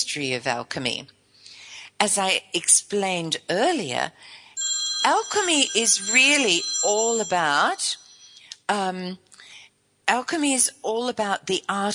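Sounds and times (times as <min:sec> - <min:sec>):
speech: 0:00.1 - 0:01.2, 0:02.0 - 0:04.4, 0:05.0 - 0:08.0, 0:08.7 - 0:09.3, 0:10.1 - 0:11.9
telephone ringing with a steady electronic tone: 0:04.6 - 0:08.5.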